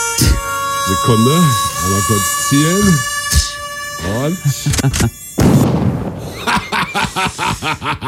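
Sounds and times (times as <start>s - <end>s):
loud voice mimicking a buzzing mosquito in a studio: 0.2s - 5.3s
speech: 1.0s - 3.1s, 4.1s - 5.2s, 7.2s - 8.0s
laughter: 6.3s - 8.0s.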